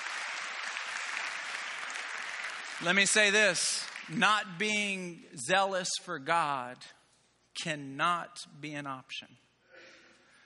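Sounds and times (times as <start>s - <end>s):
crowd applause: 0.0s - 4.2s
speech: 2.8s - 7.0s, 7.6s - 9.4s.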